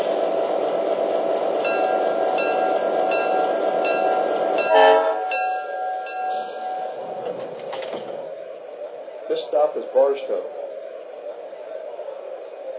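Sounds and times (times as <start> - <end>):
passenger train rumbling in on track one at station: 0.0 - 12.7
train squeals and clanks: 1.6 - 8.2
air brakes hissing: 6.1 - 7.8
speech: 10.2 - 10.6.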